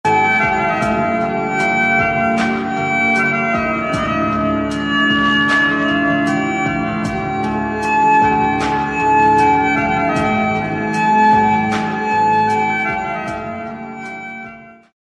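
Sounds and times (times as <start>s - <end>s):
emotional sad song ringtone: 0.1s - 14.9s.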